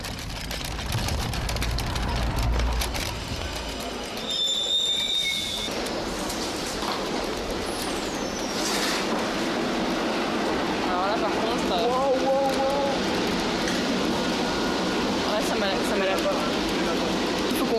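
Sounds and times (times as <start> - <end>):
train carriage rolling along rails with rumble and clatter: 0.0 - 17.7
high metallic train wheel squeal: 4.2 - 5.7.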